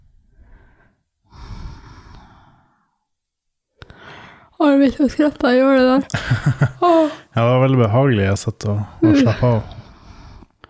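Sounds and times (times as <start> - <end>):
slow deliberate breathing during relaxation exercise: 0.0 - 3.1, 3.8 - 4.6, 9.7 - 10.6
speech: 4.6 - 9.8.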